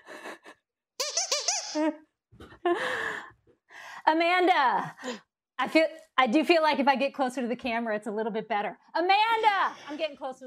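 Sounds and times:
squeaky donut toy squeaking: 1.0s - 2.0s
speech: 1.8s - 3.2s, 4.1s - 10.4s.

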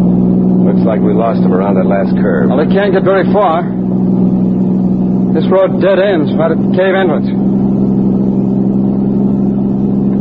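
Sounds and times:
car engine humming steadily while driving: 0.0s - 10.2s
speech: 0.8s - 4.2s, 5.4s - 7.8s.

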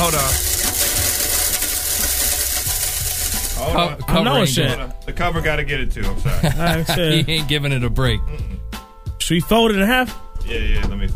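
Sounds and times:
blender motor running: 0.0s - 3.7s
speech: 3.6s - 8.6s, 9.3s - 11.1s
laughter: 6.2s - 7.6s.

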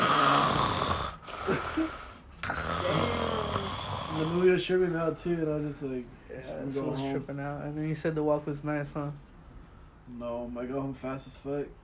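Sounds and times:
person imitating snoring: 0.0s - 4.6s
speech: 4.6s - 9.3s, 10.1s - 11.8s.

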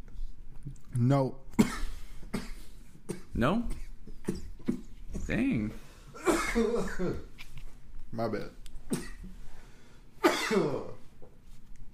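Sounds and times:
speech: 1.0s - 1.4s, 3.4s - 4.4s, 5.3s - 5.8s, 6.6s - 7.3s, 8.1s - 9.1s, 10.5s - 11.0s
throat clearing: 1.5s - 4.9s, 8.9s - 9.3s, 10.2s - 11.0s
person coughing: 1.6s - 4.6s, 6.2s - 7.3s, 8.9s - 9.3s, 10.2s - 11.0s.

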